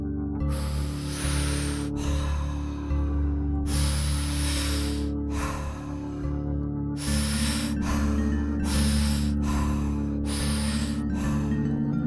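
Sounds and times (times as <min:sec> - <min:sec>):
sustained musical drone: 0:00.0 - 0:12.0
deep breathwork into belly and chest: 0:00.5 - 0:02.6, 0:03.7 - 0:06.1, 0:07.0 - 0:11.7.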